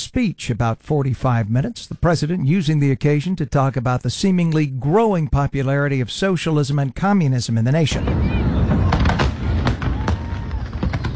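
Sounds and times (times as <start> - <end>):
speech: 0.1 - 8.6
Fourth of July fireworks shells exploding: 7.9 - 11.1.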